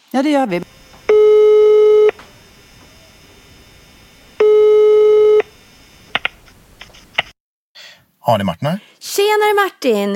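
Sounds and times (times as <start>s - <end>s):
speech: 0.1s - 1.3s, 8.3s - 10.1s
clicks as phone line is picked up: 0.5s - 7.0s
outgoing phone call electronic ring tone: 0.6s - 5.6s.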